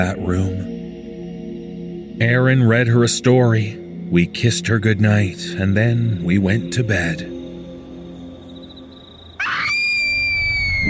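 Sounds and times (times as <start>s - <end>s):
speech: 0.0s - 0.8s, 2.2s - 7.4s
child screaming: 9.4s - 10.8s.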